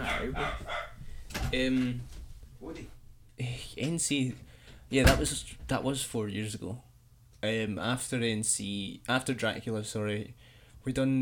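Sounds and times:
dog barking: 0.0s - 1.0s
noise: 0.0s - 11.2s
speech: 0.2s - 0.6s, 1.5s - 11.2s.

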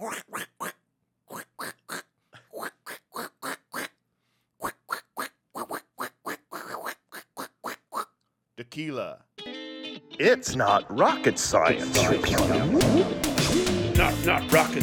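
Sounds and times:
voice imitating duck quacks: 0.0s - 4.0s, 4.6s - 8.2s
speech: 8.8s - 9.3s, 10.2s - 14.8s.

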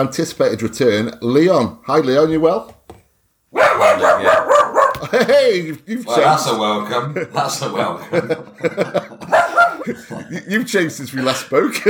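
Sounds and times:
speech: 0.0s - 2.8s, 5.1s - 11.8s
dogs barking at a cat outside: 3.5s - 5.1s, 9.2s - 9.9s
laughter: 4.8s - 5.7s, 6.9s - 10.7s, 11.6s - 11.8s.

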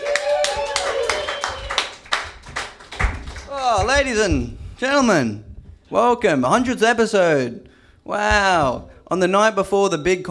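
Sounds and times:
crowd applause: 0.0s - 3.9s
people cheering: 0.0s - 4.2s
whistle: 0.8s - 1.9s
speech: 4.0s - 10.3s.

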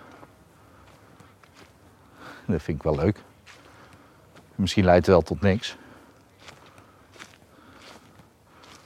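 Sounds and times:
footsteps crunching along a forest path: 0.0s - 8.8s
speech: 2.5s - 3.3s, 4.6s - 5.8s.

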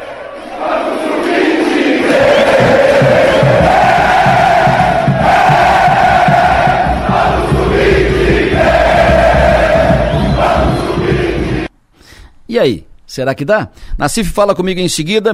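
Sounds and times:
football stadium crowd chanting in unison celebrating a victory: 0.0s - 11.7s
speech: 12.6s - 15.3s.

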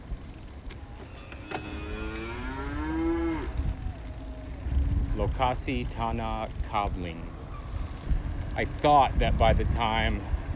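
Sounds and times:
steady outdoor rumble: 0.0s - 10.5s
cow mooing beside a road in Indonesia: 1.4s - 3.6s
speech: 5.2s - 7.3s, 8.6s - 10.4s.

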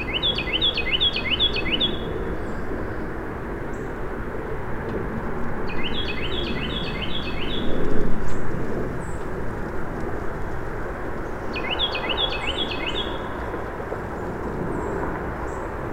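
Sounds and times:
Carolina Wren singing in flooded forest alongside a channel: 0.0s - 2.7s, 5.6s - 8.4s, 11.2s - 13.7s
parkway traffic rumble: 0.0s - 15.9s.

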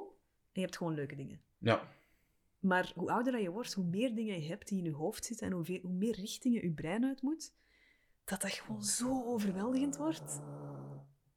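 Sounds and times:
speech: 0.6s - 2.0s, 2.6s - 7.7s, 8.3s - 11.1s
dog giving a short low growl: 9.0s - 11.2s.

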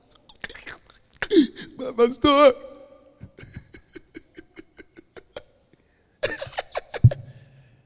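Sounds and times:
person imitating sobbing on the phone: 1.2s - 3.5s
speech: 1.9s - 2.7s.

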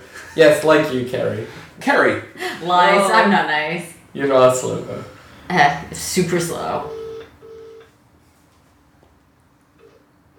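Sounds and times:
low hum: 0.0s - 10.3s
speech: 0.4s - 7.0s
short electronic phone tones from a smartwatch accidentally placing a call: 6.9s - 7.9s.

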